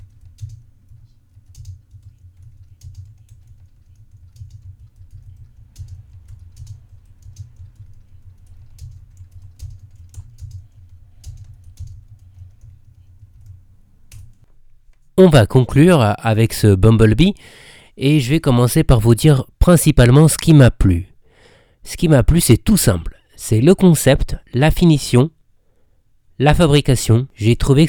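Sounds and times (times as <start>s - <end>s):
rapid typing on a computer keyboard: 0.0s - 14.5s
speech: 15.2s - 21.1s, 21.8s - 25.4s, 26.4s - 27.8s.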